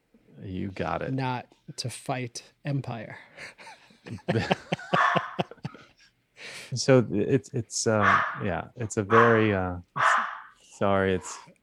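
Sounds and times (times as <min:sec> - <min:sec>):
speech: 0:00.4 - 0:05.0, 0:06.7 - 0:10.1, 0:10.8 - 0:11.6
laughter: 0:03.4 - 0:06.0
dogs barking and yelping excitedly at dinner time: 0:04.8 - 0:05.6, 0:08.0 - 0:08.5, 0:09.1 - 0:10.6.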